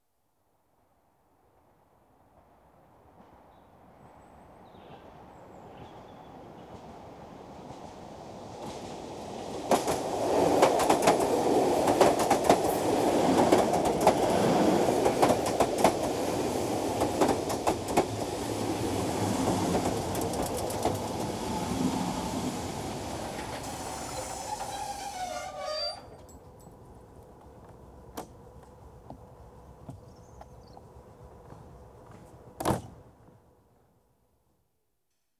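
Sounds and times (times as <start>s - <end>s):
electric train arriving: 7.7s - 32.2s.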